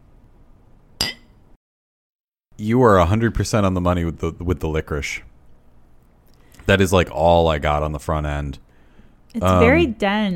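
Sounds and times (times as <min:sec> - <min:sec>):
two wine glasses clinking in a toast: 0:01.0 - 0:01.4
speech: 0:02.6 - 0:05.3, 0:06.6 - 0:08.6, 0:09.3 - 0:10.3.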